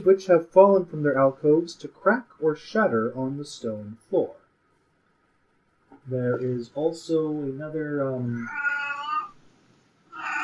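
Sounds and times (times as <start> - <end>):
speech: 0.0 - 4.4, 6.1 - 8.8
cat meowing: 8.4 - 9.4, 10.1 - 10.4.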